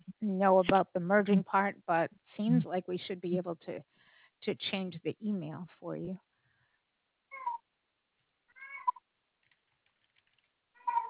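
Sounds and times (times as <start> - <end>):
speech: 0.2 - 6.3
20-year-old male Maine Coon cat meowing: 7.3 - 7.6, 8.5 - 9.0, 10.8 - 11.0.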